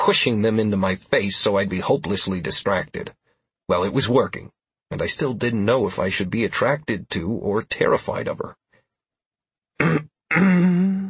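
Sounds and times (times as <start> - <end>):
speech: 0.0 - 8.6, 9.8 - 11.0
woman clearing her throat: 9.8 - 11.0.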